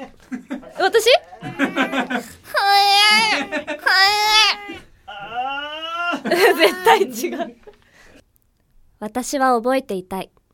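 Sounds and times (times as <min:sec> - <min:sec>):
speech: 0:00.0 - 0:02.2, 0:09.0 - 0:10.4
laughter: 0:00.0 - 0:07.8
voice actor imitating a baby crying: 0:01.3 - 0:07.2.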